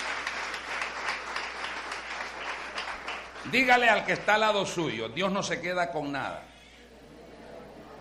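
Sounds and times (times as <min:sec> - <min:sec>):
crowd applauding: 0:00.0 - 0:04.8
speech: 0:03.5 - 0:06.5.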